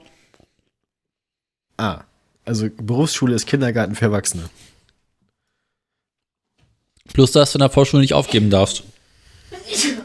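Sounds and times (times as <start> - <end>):
speech: 1.8 - 4.8, 7.2 - 8.9
sneeze: 9.5 - 10.0.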